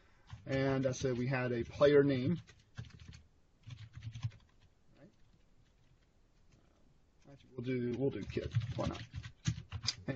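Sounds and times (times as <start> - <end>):
typing on a computer keyboard: 0.3 - 1.3, 2.3 - 6.1, 7.9 - 10.0
speech: 0.4 - 2.6, 7.6 - 9.2.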